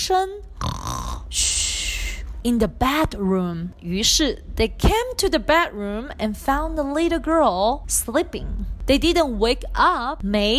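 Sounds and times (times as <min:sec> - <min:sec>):
speech: 0:00.0 - 0:00.6, 0:01.3 - 0:01.5, 0:02.4 - 0:10.5
voice imitating a baby bear snoring: 0:00.6 - 0:01.5.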